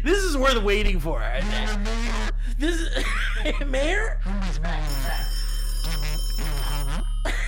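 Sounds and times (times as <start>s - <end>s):
speech: 0.0s - 5.4s
telephone ringing in a steady electronic warble through a phone line: 4.9s - 7.4s.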